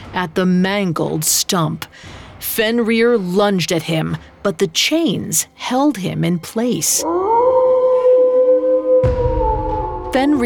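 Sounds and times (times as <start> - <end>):
speech: 0.2 - 7.4, 10.2 - 10.4
wolf howling: 7.0 - 10.4.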